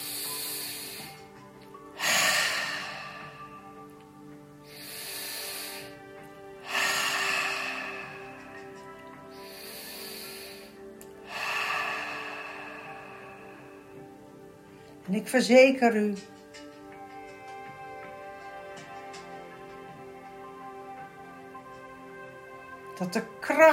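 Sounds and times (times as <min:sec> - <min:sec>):
slow deep breathing during a guided breathing exercise: 0:00.0 - 0:04.0, 0:04.6 - 0:15.0
speech: 0:15.1 - 0:16.3, 0:23.0 - 0:23.7.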